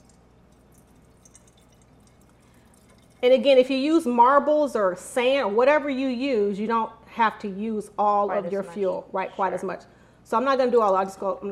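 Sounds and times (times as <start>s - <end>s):
liquid trickling into a container: 0.0s - 3.6s
liquid dripping: 0.0s - 3.8s
speech: 3.2s - 11.5s.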